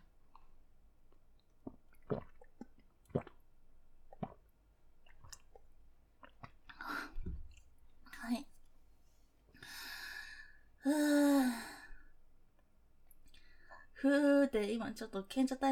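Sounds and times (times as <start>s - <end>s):
person drinking water with sips and swallowing: 0.0s - 7.7s
speech: 14.0s - 15.6s.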